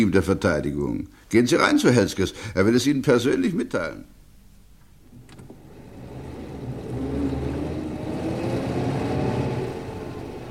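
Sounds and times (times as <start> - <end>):
speech: 0.0 - 4.2
car engine humming while driving: 5.1 - 10.4.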